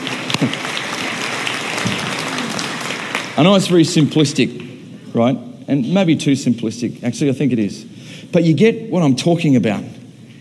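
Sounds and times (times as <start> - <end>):
crowd clapping: 0.0 - 4.8
speech: 0.4 - 0.7, 3.4 - 10.0.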